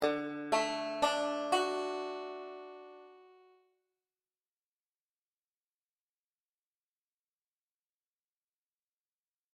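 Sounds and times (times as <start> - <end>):
D chord on a five-string banjo: 0.0 - 3.6.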